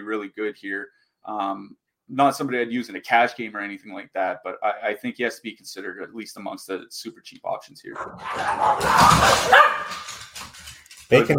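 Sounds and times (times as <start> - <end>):
speech: 0.1 - 10.2, 11.1 - 11.3
dog barking: 8.0 - 10.1.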